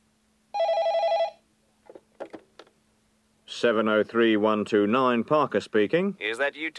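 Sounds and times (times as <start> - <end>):
faint steady hum: 0.0 - 6.7
telephone ringing: 0.6 - 1.4
speech: 3.6 - 6.7.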